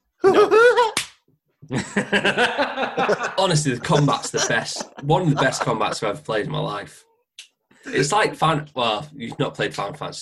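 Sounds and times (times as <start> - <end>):
bursts of laughter: 0.2 - 0.8, 1.7 - 6.2
slap sound effect: 1.0 - 1.2
speech: 1.7 - 7.1, 7.9 - 10.2.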